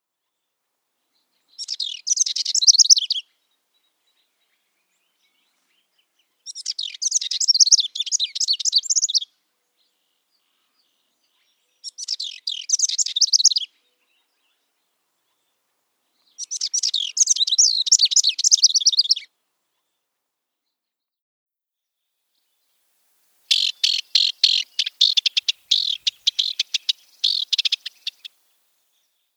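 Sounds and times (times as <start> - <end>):
House Wren singing: 1.4 - 3.3, 4.2 - 9.3, 10.8 - 14.6, 16.2 - 19.3, 23.5 - 29.2.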